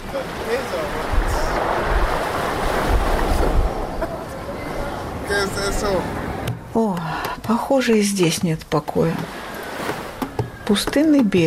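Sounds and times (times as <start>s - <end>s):
wind rushing: 0.0s - 6.5s
ocean surf rolling onto the shore: 0.0s - 7.6s, 8.8s - 11.4s
speech: 0.1s - 1.0s, 5.8s - 6.2s, 6.8s - 9.4s, 10.7s - 11.4s.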